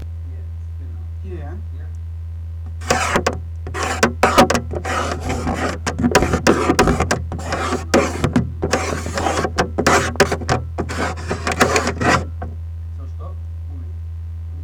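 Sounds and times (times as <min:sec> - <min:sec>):
finger on plastic console: 0:02.7 - 0:12.6.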